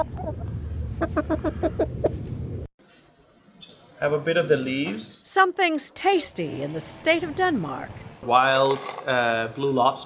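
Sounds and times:
chicken clucking: 0.0s - 2.2s
speech: 1.0s - 1.6s, 4.0s - 10.0s.

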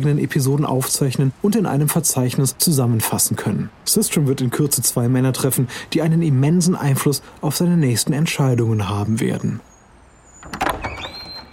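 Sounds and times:
speech: 0.0s - 9.7s
door being opened by a man: 10.4s - 11.5s.

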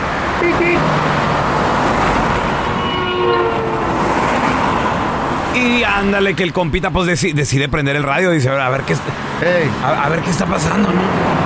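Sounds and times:
loud steady roar of passing traffic: 0.0s - 11.4s
sustained car horn blast: 0.4s - 0.9s, 2.5s - 5.1s
speech: 0.4s - 1.2s, 5.6s - 11.4s.

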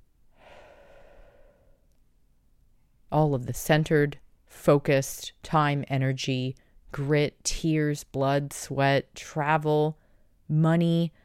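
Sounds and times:
long deep breath in and out: 0.3s - 1.9s
speech: 3.1s - 11.2s.

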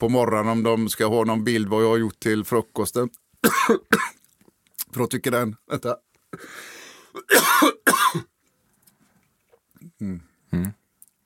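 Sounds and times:
speech: 0.0s - 4.2s, 5.0s - 8.3s, 10.0s - 10.8s
loud harsh coughs: 3.4s - 4.2s, 6.4s - 8.3s.

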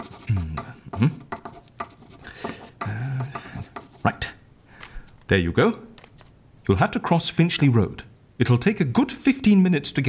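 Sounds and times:
person murmuring: 0.0s - 1.4s, 2.7s - 4.2s
pen scratching across a scrap of paper: 0.0s - 4.3s
speech: 1.0s - 1.2s, 5.3s - 5.9s, 6.7s - 10.0s.

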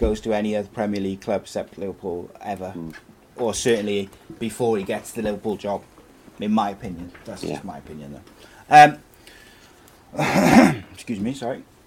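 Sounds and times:
speech: 0.0s - 9.1s, 10.1s - 11.7s
brief throaty vocal murmur: 2.7s - 3.1s
loud cough into the microphone: 10.2s - 11.0s.

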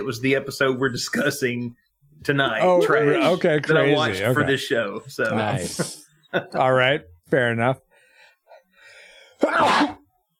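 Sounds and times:
speech: 0.0s - 7.8s, 9.4s - 10.0s
person sneezing: 9.4s - 10.1s.

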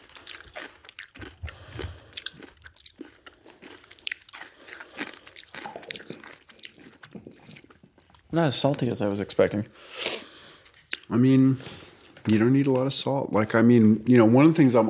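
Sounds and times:
crunchy chewing of fermented radish kraut: 0.0s - 8.9s
speech: 8.4s - 10.1s, 11.1s - 14.8s.

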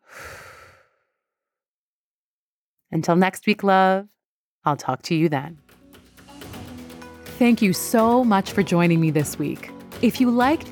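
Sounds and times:
slow breathy exhale during guided breathing: 0.0s - 1.2s
speech: 2.9s - 5.7s, 7.4s - 10.7s.

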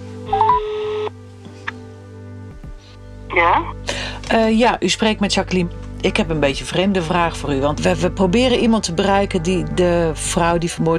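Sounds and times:
electronic telephone dialling tones: 0.3s - 1.1s
speech: 3.4s - 10.9s.

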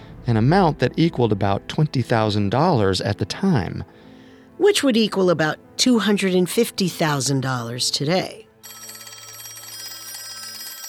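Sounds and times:
speech: 0.3s - 4.0s, 4.6s - 8.8s
old-fashioned telephone bell ringing: 8.6s - 10.8s.

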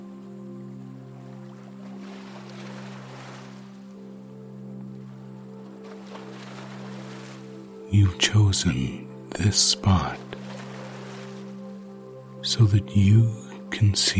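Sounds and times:
small waves lapping the shore of a windy lake: 0.9s - 7.9s, 10.2s - 12.0s
speech: 7.9s - 10.4s, 12.5s - 14.1s.

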